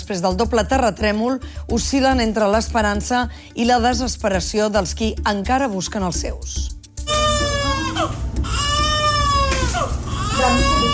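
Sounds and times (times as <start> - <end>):
speech: 0.1 - 6.8, 10.4 - 10.9
baby crying after rescue from earthquake rubble: 7.0 - 10.9.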